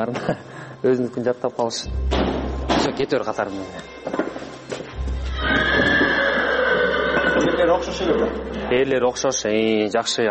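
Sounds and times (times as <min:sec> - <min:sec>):
speech: 0:00.0 - 0:04.8, 0:07.4 - 0:10.2
horse whinnying while horses are gathered together: 0:05.0 - 0:08.7.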